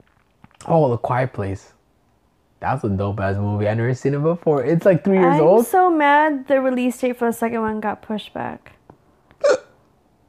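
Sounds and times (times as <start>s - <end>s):
speech: 0.7s - 1.8s, 2.6s - 8.8s
drunk person hiccuping: 9.4s - 9.8s.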